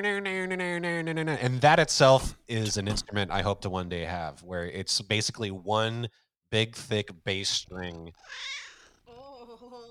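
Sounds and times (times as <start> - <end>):
speech: 0.0 - 8.6
cat meowing: 8.2 - 8.9.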